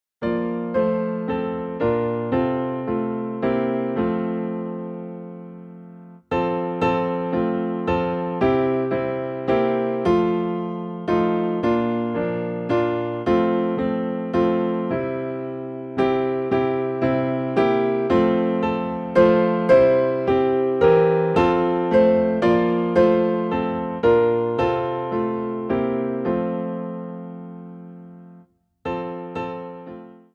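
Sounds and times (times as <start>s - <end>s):
hymn played on piano in F: 0.1s - 30.3s.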